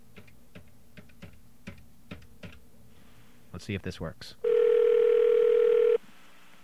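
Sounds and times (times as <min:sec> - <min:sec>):
speech: 0:03.6 - 0:04.5
telephone dial tone: 0:04.4 - 0:06.0.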